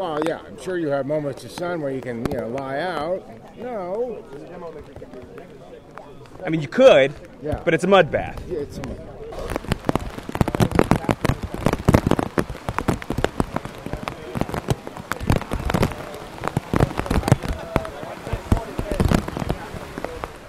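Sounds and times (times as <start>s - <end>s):
speech: 0.0s - 9.6s
faint voices murmuring: 0.0s - 20.4s
heavy monsoon rain pounding down in Fiji: 6.3s - 20.4s.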